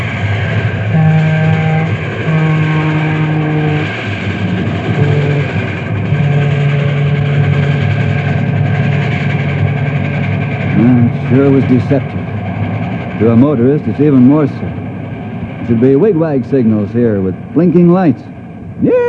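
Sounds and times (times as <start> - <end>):
express train roaring past a railroad crossing: 0.0 - 19.0
long steady train horn blasts: 0.9 - 4.0, 4.8 - 8.0
speech: 11.6 - 12.4, 13.2 - 14.8, 15.7 - 19.0.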